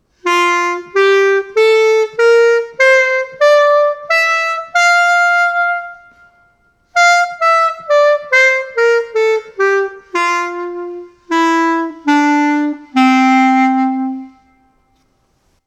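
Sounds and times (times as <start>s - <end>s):
woodsax: 0.0s - 15.2s.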